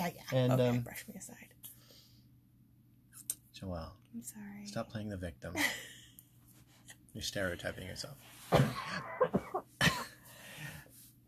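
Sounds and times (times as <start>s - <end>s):
speech: 0.1s - 1.5s, 3.6s - 5.9s, 7.2s - 9.7s
person coughing: 8.6s - 10.1s.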